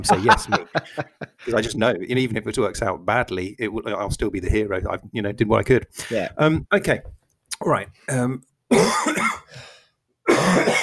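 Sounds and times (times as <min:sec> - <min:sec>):
laughter: 0:00.0 - 0:01.6
speech: 0:00.0 - 0:09.7, 0:10.4 - 0:10.8
harsh coughs: 0:08.7 - 0:09.5, 0:10.3 - 0:10.8.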